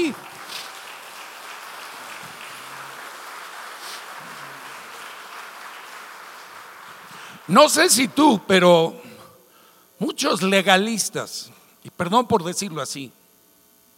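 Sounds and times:
speech: 0:00.0 - 0:00.3, 0:07.5 - 0:09.0, 0:10.0 - 0:13.2
audience applauding during a sermon: 0:00.0 - 0:08.1.

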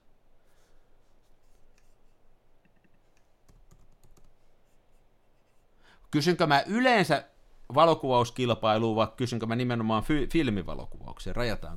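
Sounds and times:
soft hiss: 0:00.0 - 0:11.7
typing on a computer keyboard: 0:03.5 - 0:04.4
speech: 0:06.1 - 0:11.7.

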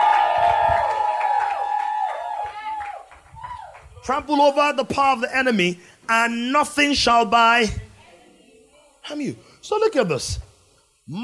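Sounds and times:
audience clapping: 0:00.0 - 0:04.1
speech: 0:04.0 - 0:07.8, 0:09.1 - 0:10.4.

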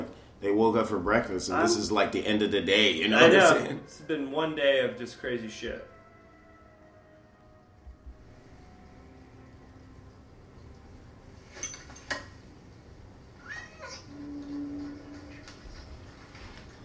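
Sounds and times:
low steady hum: 0:00.0 - 0:16.8
speech: 0:00.4 - 0:05.9
cat meowing: 0:13.4 - 0:14.5.

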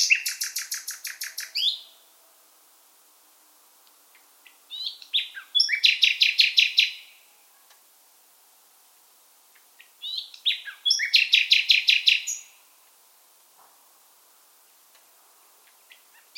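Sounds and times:
common nightingale singing in full voice: 0:00.0 - 0:02.3, 0:04.1 - 0:07.8, 0:09.5 - 0:12.7, 0:15.5 - 0:16.3.

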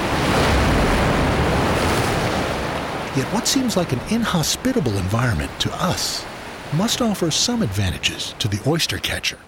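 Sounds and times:
heavy ocean surf pounding against shoreline rocks: 0:00.0 - 0:09.4
speech: 0:03.2 - 0:09.4.

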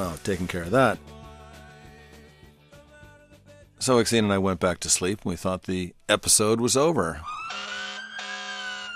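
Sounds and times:
speech: 0:00.0 - 0:01.2, 0:03.8 - 0:07.8
fire truck siren blaring at a steady pitch: 0:07.2 - 0:08.9.

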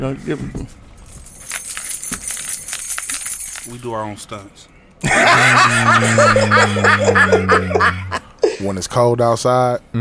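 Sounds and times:
speech: 0:00.0 - 0:00.8, 0:03.6 - 0:09.9
set of keys jangling: 0:00.0 - 0:03.9.

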